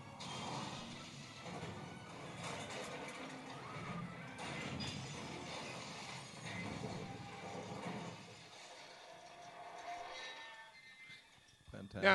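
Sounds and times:
car crashing into a pile of boxes: 0:00.2 - 0:09.7
speech: 0:11.9 - 0:12.1.

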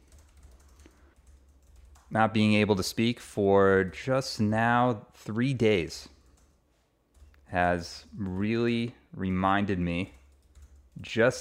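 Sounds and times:
typing on a computer keyboard: 0:00.0 - 0:02.2, 0:06.1 - 0:07.5, 0:09.9 - 0:11.3
speech: 0:02.1 - 0:06.2, 0:07.5 - 0:10.2, 0:11.0 - 0:11.3.

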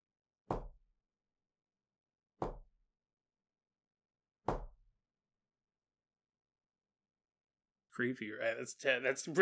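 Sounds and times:
knocking on a car door while the car is driven through fog: 0:04.5 - 0:04.8
speech: 0:08.0 - 0:09.4.

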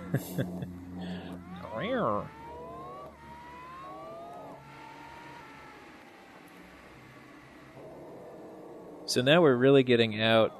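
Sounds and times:
car engine revving through gear shifts: 0:00.0 - 0:10.5
speech: 0:00.1 - 0:00.8, 0:01.8 - 0:02.4, 0:09.1 - 0:10.5.

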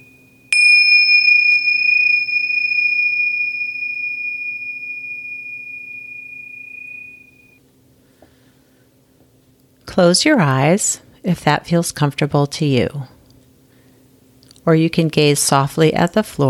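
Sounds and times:
meditation bell rung to start a meditation: 0:00.0 - 0:07.6
speech: 0:10.0 - 0:13.2, 0:14.6 - 0:16.4.

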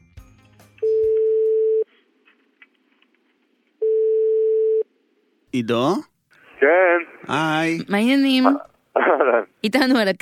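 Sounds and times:
ringback tone of an outgoing telephone call: 0:00.8 - 0:01.8, 0:03.8 - 0:04.8
speech: 0:05.5 - 0:10.2.

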